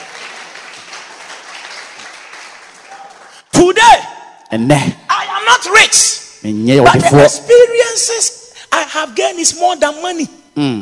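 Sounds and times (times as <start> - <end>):
audience clapping for the pastor: 0.0 - 3.5
speech: 4.5 - 10.8.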